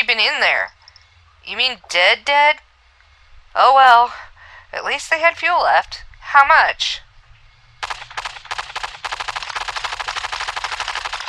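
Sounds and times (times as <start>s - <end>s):
speech: 0.2s - 0.8s, 1.5s - 2.7s, 3.6s - 7.0s
rapid bursts of automatic gunfire: 7.8s - 11.2s.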